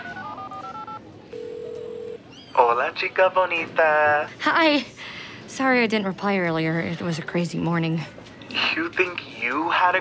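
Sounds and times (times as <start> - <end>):
phone touch-tone dialing beeps: 0.0 - 2.2
speech: 2.6 - 9.9.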